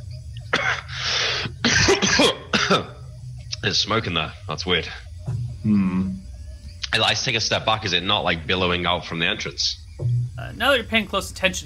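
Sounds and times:
person coughing: 0.5 - 0.9, 1.6 - 3.0
raspy breathy stretch: 0.7 - 1.6
speech: 3.6 - 6.2, 6.9 - 11.6.

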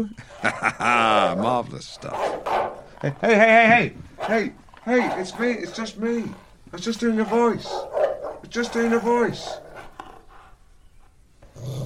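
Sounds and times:
laughter: 0.0 - 2.2, 2.8 - 4.2
speech: 0.0 - 7.9, 8.5 - 9.6
dog growling low with huffs: 1.0 - 10.7, 11.4 - 11.8.

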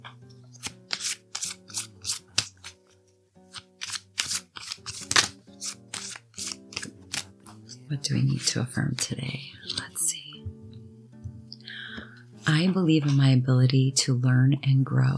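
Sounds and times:
soft sustained music: 0.0 - 15.1
deck of cards being shuffled: 0.4 - 10.0
speech: 7.9 - 9.6, 12.6 - 15.1.

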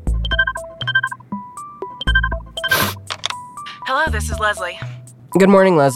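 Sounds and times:
bright melodic electronic phone ringtone during outgoing call: 0.0 - 3.9
speech: 3.9 - 5.9.

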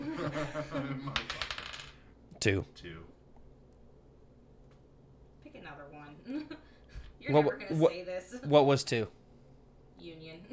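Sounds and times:
laughter: 0.0 - 1.3
speech: 0.3 - 1.2, 2.4 - 3.1, 7.2 - 9.2
dice clattering across a tabletop: 1.2 - 2.0.

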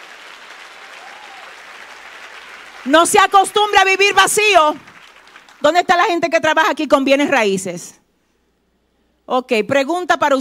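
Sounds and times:
crowd applauding: 0.0 - 6.0
speech: 2.8 - 4.9, 5.6 - 8.0, 9.3 - 10.3.

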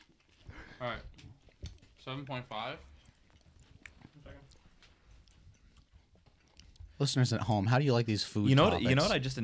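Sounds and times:
wet chewing of fried chicken at the microphone: 0.0 - 7.0
speech: 0.8 - 1.3, 2.0 - 2.9, 7.0 - 9.4.

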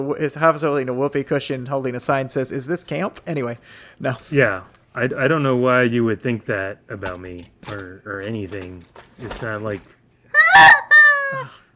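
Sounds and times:
speech: 0.0 - 10.0
rubber chicken toy squeezed, squawking and squealing: 10.4 - 11.6.

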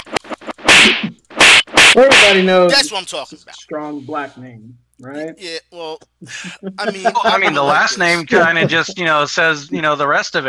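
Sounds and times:
cracking slap sound effects: 0.0 - 2.8
speech: 2.0 - 10.4
laughter: 5.4 - 9.2.

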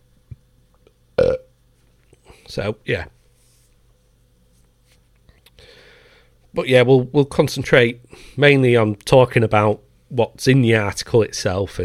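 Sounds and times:
loud throaty resonant burp: 1.2 - 1.5
speech: 2.5 - 3.2, 6.6 - 11.8.

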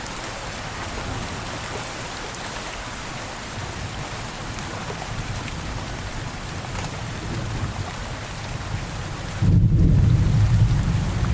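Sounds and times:
steady rain hissing: 0.0 - 11.3
thunder rumbling: 3.6 - 11.3.

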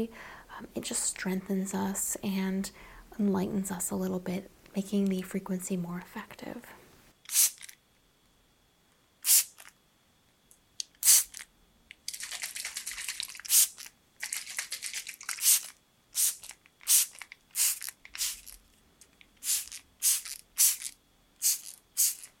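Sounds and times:
speech: 0.0 - 7.6
bits being peeled off: 10.8 - 22.3.

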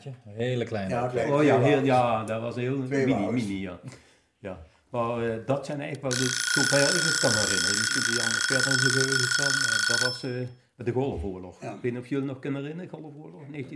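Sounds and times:
speech: 0.0 - 13.7
shrill alarm clock ringing: 6.1 - 10.5.

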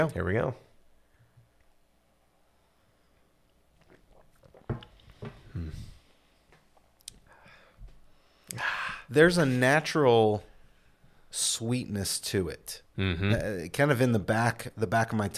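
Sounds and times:
speech: 0.0 - 0.7, 8.5 - 10.5, 11.3 - 15.3
someone sipping hot coffee with slurping and lip-smacking: 3.5 - 5.9.

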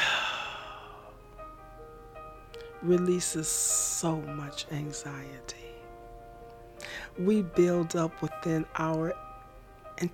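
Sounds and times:
breathy exhale like a deep relaxing sigh: 0.0 - 1.1
speech: 2.8 - 5.7, 7.2 - 9.2, 10.0 - 10.1.

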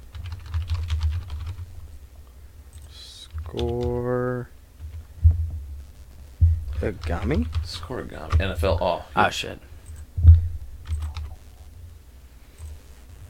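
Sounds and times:
typing on a computer keyboard: 0.0 - 1.7, 2.7 - 4.2, 6.7 - 8.8, 9.8 - 11.5
low hum: 1.1 - 13.2
speech: 3.5 - 4.5, 6.8 - 9.7
heavy thump: 5.2 - 5.8, 6.4 - 6.8.

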